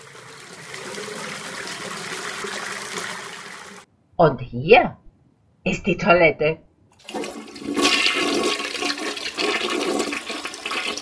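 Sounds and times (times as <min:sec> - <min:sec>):
water running from a sink tap: 0:00.0 - 0:03.8, 0:07.0 - 0:10.9
speech: 0:04.2 - 0:05.0, 0:05.6 - 0:06.7.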